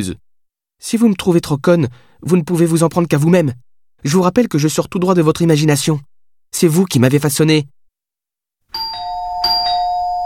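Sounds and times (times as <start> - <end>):
speech: 0.0 - 0.2, 0.8 - 7.8
doorbell rung repeatedly by a visitor: 8.7 - 10.2.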